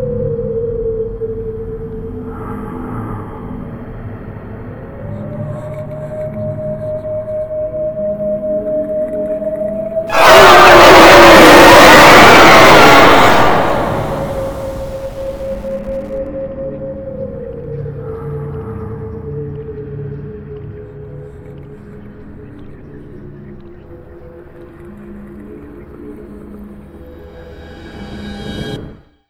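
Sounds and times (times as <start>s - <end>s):
zombie: 10.1s - 16.2s.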